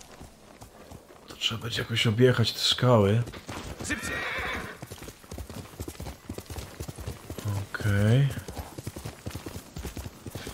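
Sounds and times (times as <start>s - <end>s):
horse hooves clip-clopping in a video game: 0.0s - 10.5s
speech: 1.4s - 4.5s, 7.9s - 8.4s
horse whinny in a video game: 3.8s - 4.9s.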